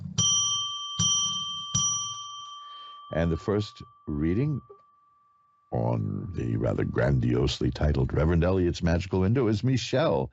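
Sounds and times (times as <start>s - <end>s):
metallic bell struck to declare sacred space: 0.0s - 5.7s
speech: 3.2s - 4.8s, 5.7s - 10.3s.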